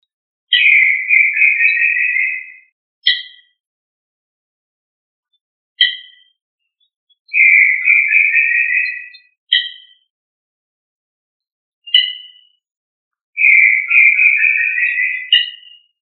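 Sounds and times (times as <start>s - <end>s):
quail short sharp chirped notes: 0.5s - 3.5s, 5.8s - 6.3s, 7.3s - 10.0s, 11.9s - 12.6s, 13.4s - 15.9s.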